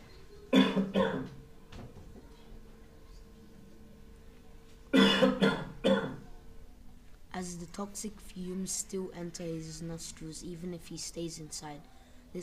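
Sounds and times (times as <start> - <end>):
harsh hacking rasping chesty coughs: 0.5 - 1.4, 4.9 - 6.2
speech: 0.8 - 1.0, 7.4 - 12.4.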